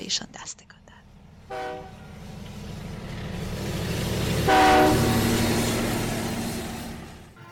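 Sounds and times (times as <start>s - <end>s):
speech: 0.1s - 0.9s, 1.5s - 2.4s
train horn blasts: 1.4s - 2.3s, 4.4s - 5.5s, 7.3s - 7.5s
train wheels clattering on rails: 2.0s - 7.5s.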